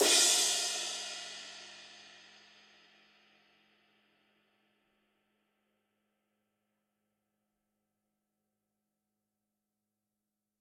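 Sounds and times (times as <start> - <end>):
ride cymbal on a Gretsch drum kit: 0.0 - 2.4.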